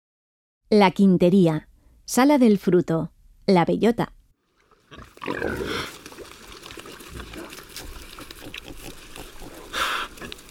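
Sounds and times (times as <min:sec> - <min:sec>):
speech: 0:00.7 - 0:04.2, 0:04.9 - 0:06.0
pigs rustling and snuffling as they move: 0:04.5 - 0:10.4
Iberian pigs grunting and squealing: 0:04.7 - 0:10.4.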